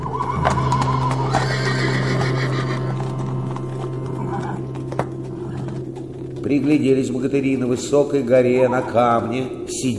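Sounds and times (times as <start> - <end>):
white horse and black horse whinnying loudly: 0.0 - 6.6
low hum: 0.0 - 8.5
speech: 6.5 - 9.9.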